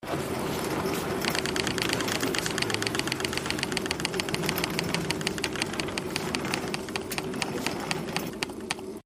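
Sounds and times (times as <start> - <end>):
bonus wheel clicking: 1.0 - 9.0.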